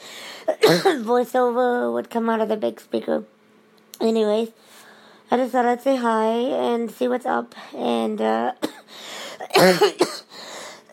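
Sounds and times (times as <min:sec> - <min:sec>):
breathing: 0:00.0 - 0:00.5, 0:04.6 - 0:05.3, 0:08.9 - 0:09.4, 0:10.3 - 0:10.9
person with lingering cough coughing while lying down: 0:00.5 - 0:01.1, 0:08.6 - 0:10.4
speech: 0:00.6 - 0:03.4, 0:04.0 - 0:04.7, 0:05.3 - 0:10.1.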